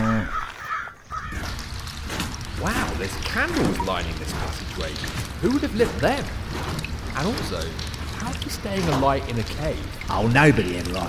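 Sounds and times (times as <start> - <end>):
crows cawing: 0.0 - 2.0
rough hum of outdoor noise: 0.0 - 11.0
speech: 2.6 - 11.0.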